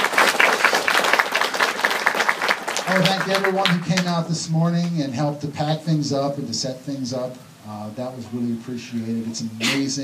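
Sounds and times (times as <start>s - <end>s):
church congregation applauding: 0.0s - 4.2s
speech: 2.9s - 10.0s.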